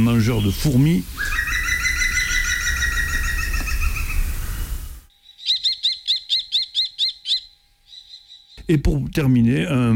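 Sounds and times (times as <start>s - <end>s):
speech: 0.0s - 1.6s, 8.7s - 9.9s
busy noisy bird calling: 0.0s - 8.9s
green woodpecker laughing call: 1.2s - 8.7s.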